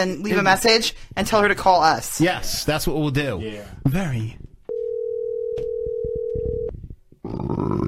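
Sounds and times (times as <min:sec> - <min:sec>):
speech: 0:00.0 - 0:04.4, 0:07.3 - 0:07.8
telephone dial tone: 0:04.7 - 0:06.7
telephone line noise: 0:04.7 - 0:06.7.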